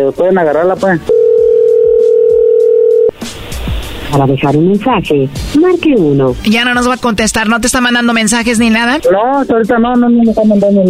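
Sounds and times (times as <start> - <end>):
speech: 0.0 - 1.2, 4.1 - 10.8
telephone line tone after call hung up: 1.1 - 3.1.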